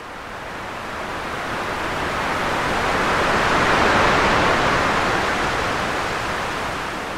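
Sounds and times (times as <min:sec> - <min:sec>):
repetitive ocean waves: 0:00.2 - 0:07.1.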